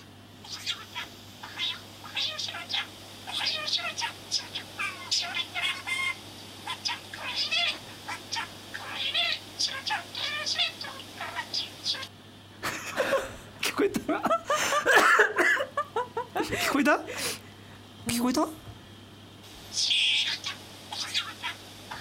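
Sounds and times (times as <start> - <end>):
pet parakeet chirping and warbling: 0.0 - 12.1, 19.6 - 21.9
laughter: 12.6 - 16.8.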